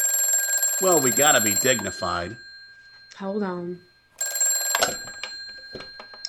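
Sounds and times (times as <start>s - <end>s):
telephone bell ringing in an office: 0.0s - 6.2s
speech: 0.8s - 2.5s, 3.2s - 3.9s
soft knocks and clatters: 4.8s - 6.2s.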